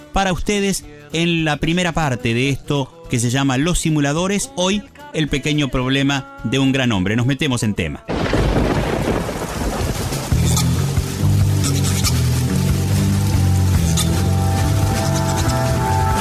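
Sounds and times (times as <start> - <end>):
speech: 0.2 - 8.3
deep sustained low rumble: 8.1 - 16.1
steady rain: 8.1 - 16.1.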